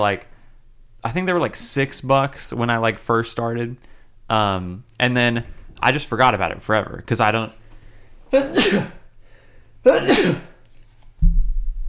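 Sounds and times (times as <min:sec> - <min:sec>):
speech: 0:00.0 - 0:00.3, 0:01.0 - 0:07.6, 0:08.3 - 0:09.0, 0:09.8 - 0:10.5
person sneezing: 0:08.3 - 0:09.1, 0:09.8 - 0:10.6.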